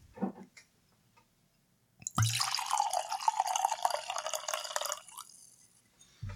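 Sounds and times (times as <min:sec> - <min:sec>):
Hakuto Tokubetsu Junmai sake pouring into a glass: 0:02.0 - 0:05.6.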